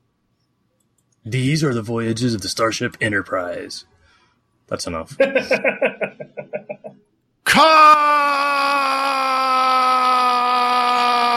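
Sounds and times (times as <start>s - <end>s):
speech: 1.2s - 3.9s, 4.7s - 6.5s, 7.6s - 8.8s
long drawn-out anguished scream: 7.5s - 11.3s.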